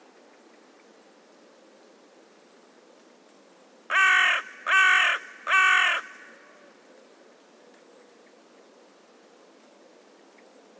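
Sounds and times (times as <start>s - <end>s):
bird giving loud harsh drawn-out cawing calls: 3.9s - 6.9s.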